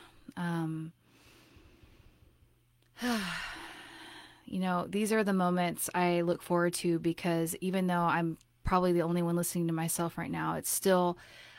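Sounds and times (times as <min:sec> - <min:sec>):
speech: 0:00.4 - 0:01.0, 0:03.0 - 0:03.4, 0:04.5 - 0:11.5
quiet breathing: 0:00.9 - 0:04.5, 0:11.2 - 0:11.5.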